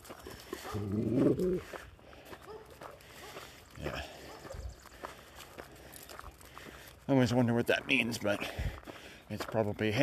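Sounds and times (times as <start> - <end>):
dog whining growl: 0.7 - 1.6
speech: 0.7 - 1.9, 7.1 - 10.0.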